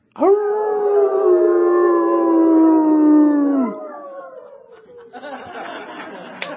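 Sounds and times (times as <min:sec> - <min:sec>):
people imitating a wolf howl: 0:00.2 - 0:05.1
laughter: 0:04.7 - 0:06.5.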